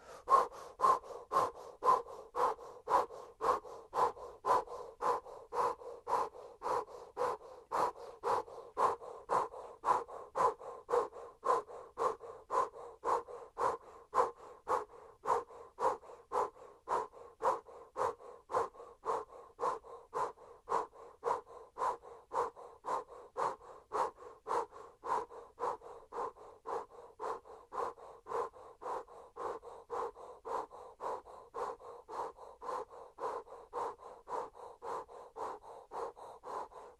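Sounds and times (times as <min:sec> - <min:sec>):
yogic breath of fire rapid forceful breathing: 0:00.0 - 0:36.9.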